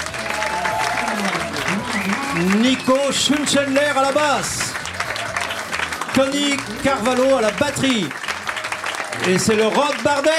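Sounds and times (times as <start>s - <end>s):
audience applause at a blues café concert: 0.0s - 10.3s
speech: 2.4s - 4.7s, 6.2s - 8.2s, 9.2s - 10.3s.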